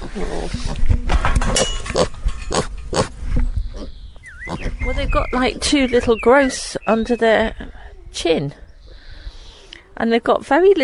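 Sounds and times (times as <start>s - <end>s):
speech: 0.2s - 1.0s, 5.4s - 8.6s, 10.0s - 10.8s
pig grunting and snorting: 1.5s - 4.8s.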